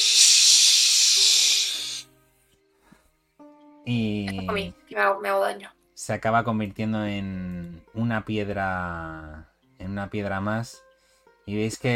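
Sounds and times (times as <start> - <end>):
steam escaping under pressure: 0.0 - 2.1
speech: 3.9 - 10.8, 11.5 - 11.9.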